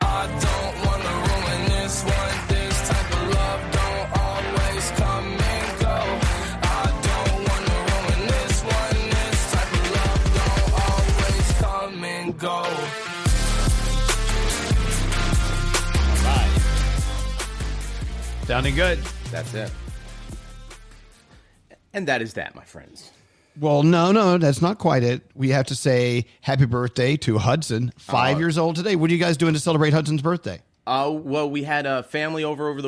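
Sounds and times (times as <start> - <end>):
rap song with driving beat and heavy bass: 0.0 - 21.2
speech: 18.6 - 19.8, 22.0 - 32.8.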